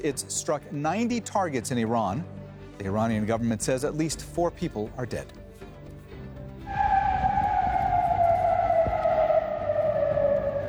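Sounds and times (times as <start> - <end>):
speech: 0.0 - 5.4
warning siren in Kuwait or Bahrain wailing: 6.5 - 10.6.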